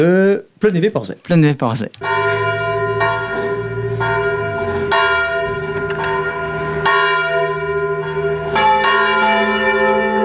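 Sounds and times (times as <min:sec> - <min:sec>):
speech: 0:00.0 - 0:02.6
dissonant church bell ringing: 0:02.0 - 0:10.2.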